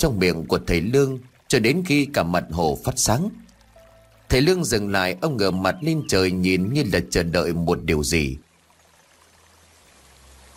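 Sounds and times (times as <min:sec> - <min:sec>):
speech: 0:00.0 - 0:03.4, 0:04.3 - 0:08.4
heavy rain pouring down: 0:00.0 - 0:06.8.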